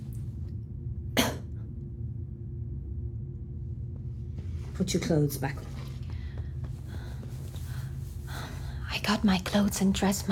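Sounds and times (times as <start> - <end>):
steady low hum: 0.0 - 10.3
single short sharp cough: 1.2 - 1.5
speech: 4.8 - 5.8, 9.1 - 10.3.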